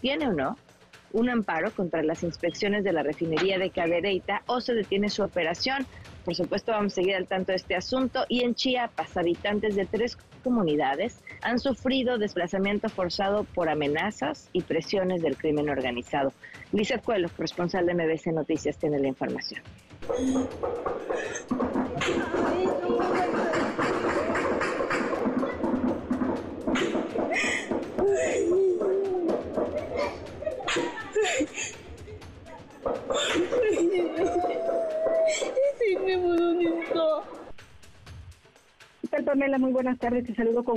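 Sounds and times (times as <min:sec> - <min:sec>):
speech: 0:00.0 - 0:23.3, 0:32.8 - 0:37.4, 0:39.1 - 0:40.7
person crying and lamenting with choked wavering wails: 0:20.1 - 0:21.5, 0:26.8 - 0:32.2, 0:33.1 - 0:37.5
laughter: 0:20.1 - 0:37.5.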